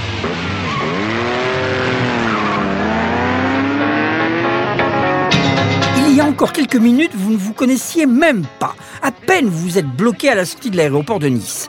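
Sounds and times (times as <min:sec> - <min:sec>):
tire squeal as a car takes off from a red light: 0:00.0 - 0:04.0
car engine revving at a street race start: 0:00.0 - 0:06.0
speech: 0:06.4 - 0:11.6.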